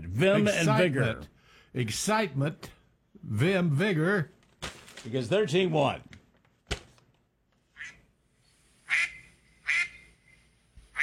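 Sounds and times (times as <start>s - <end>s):
speech: 0.2s - 4.4s, 5.0s - 6.2s
duck call quacking: 7.8s - 8.0s, 8.9s - 10.1s.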